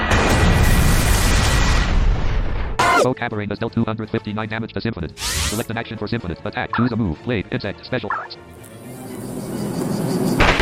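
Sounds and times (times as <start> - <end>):
video game cannon attack blast: 0.1 - 3.1, 10.4 - 10.6
speech: 3.0 - 8.6.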